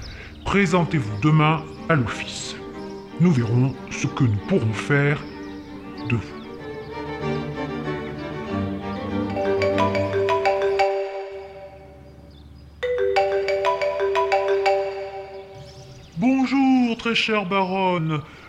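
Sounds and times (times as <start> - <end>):
low sustained tone: 0.0 - 18.3
speech: 0.5 - 2.6, 3.2 - 5.3, 6.1 - 6.4, 17.1 - 18.4
telephone ringing in warbling bursts: 9.3 - 12.1, 12.8 - 15.7.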